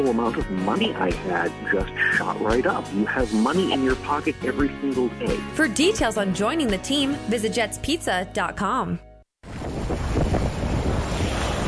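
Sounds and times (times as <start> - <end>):
speech: 0.0 - 9.1
howling winter storm wind buffeting the microphone: 9.4 - 11.6.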